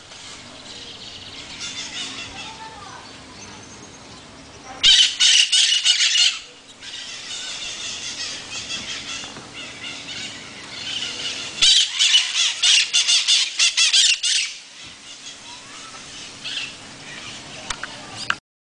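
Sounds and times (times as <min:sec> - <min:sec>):
steady background hiss: 0:00.0 - 0:18.4
maritaca parrot squawks: 0:04.8 - 0:17.4.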